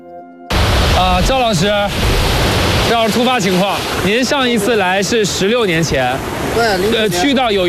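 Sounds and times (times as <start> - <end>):
fast-flowing river rushing through valley: 0.5 - 7.6
speech: 1.0 - 7.6.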